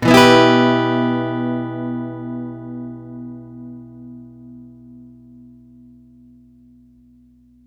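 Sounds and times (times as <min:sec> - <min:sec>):
acoustic guitar one shot in B minor at 125 BPM: 0:00.0 - 0:03.8.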